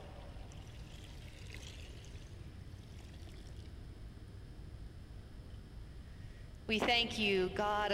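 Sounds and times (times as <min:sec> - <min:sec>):
water pouring steadily: 0:00.4 - 0:03.7
speech: 0:06.7 - 0:07.9.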